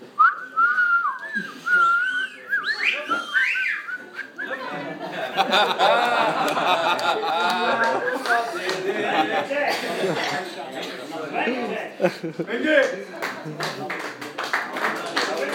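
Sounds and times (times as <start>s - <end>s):
several people chattering and laughing: 0.1s - 15.5s
whistled tune: 0.2s - 4.6s.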